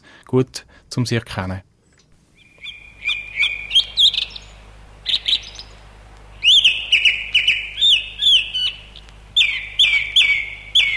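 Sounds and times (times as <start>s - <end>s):
speech: 0.3s - 1.7s
song thrush singing repeated short phrases: 2.2s - 10.9s.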